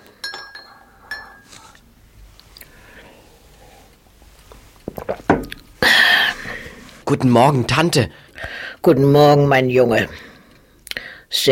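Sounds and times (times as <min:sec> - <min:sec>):
soft tableware clatter at a breakfast table: 0:00.0 - 0:01.7
metal spoon stirring tea in a china teacup at a breakfast table: 0:00.1 - 0:01.5
speech: 0:07.1 - 0:08.2, 0:08.8 - 0:10.3.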